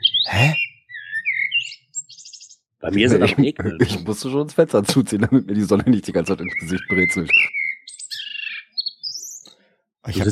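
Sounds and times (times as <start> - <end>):
bird singing sliding whistled notes and a high-pitched trill: 0.0 - 3.1, 5.3 - 10.3
speech: 2.8 - 7.6, 10.1 - 10.3
laughter: 2.9 - 7.2, 10.1 - 10.3.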